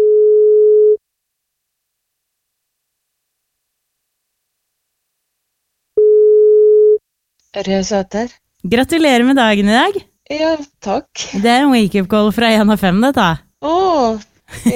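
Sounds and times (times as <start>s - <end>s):
telephone ringback tone beeps while a call is placed: 0.0s - 1.0s, 6.0s - 7.0s
speech: 7.6s - 14.7s.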